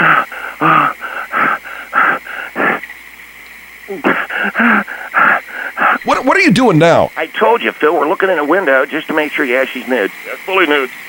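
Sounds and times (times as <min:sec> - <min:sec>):
heavy wheezy panting: 0:00.0 - 0:02.9, 0:03.9 - 0:06.1
speech: 0:00.6 - 0:00.8, 0:06.2 - 0:11.0.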